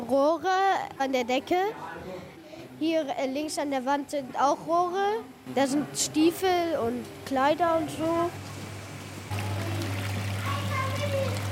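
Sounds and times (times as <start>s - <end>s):
speech: 0.1s - 2.1s, 2.8s - 8.5s
constant low hum of large water and oxygen pumps: 7.8s - 11.5s
water bubbling and trickling in aquarium tanks: 9.3s - 11.5s.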